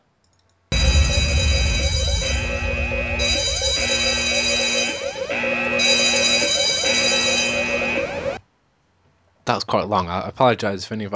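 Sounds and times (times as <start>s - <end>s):
loud harsh electronic alarm with pulsing cycling tones: 0.7s - 8.4s
speech: 9.5s - 11.1s.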